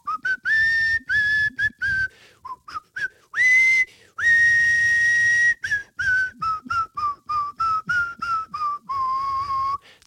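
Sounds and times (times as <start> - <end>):
man whistling a movie theme tune: 0.0 - 10.0.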